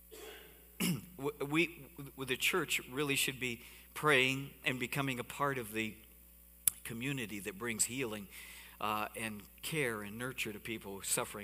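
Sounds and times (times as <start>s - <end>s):
cough: 0.1s - 1.2s
speech: 0.9s - 6.0s, 6.8s - 11.4s.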